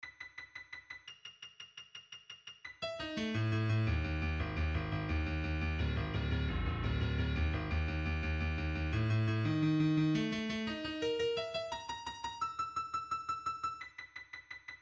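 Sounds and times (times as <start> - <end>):
chromatic MIDI melody in C: 2.8 - 13.8.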